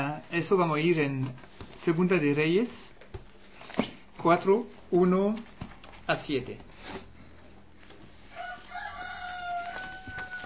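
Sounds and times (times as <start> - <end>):
faint hum: 0.0 - 10.4
speech: 0.3 - 2.9, 4.2 - 7.1
rooster crowing: 8.3 - 10.4.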